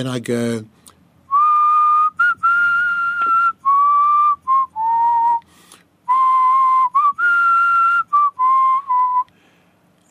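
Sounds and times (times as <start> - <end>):
person whistling tunes inside a prison: 1.3 - 5.5, 6.1 - 9.3.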